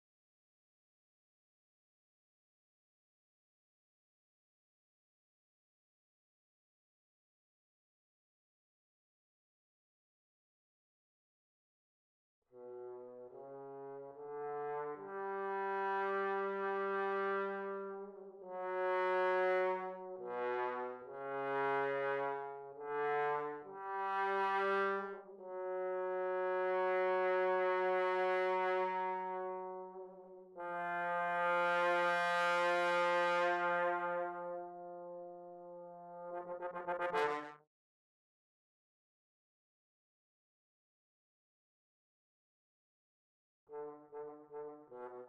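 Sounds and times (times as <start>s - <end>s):
bass trombone: 12.6s - 37.6s, 43.7s - 45.2s.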